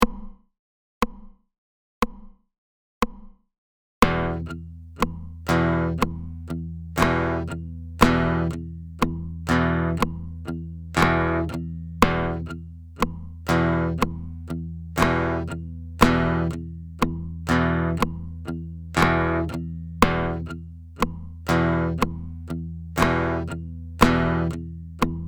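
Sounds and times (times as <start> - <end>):
accents over a sixties rock rhythm: 4.0 - 14.4, 15.0 - 22.4, 23.0 - 25.2.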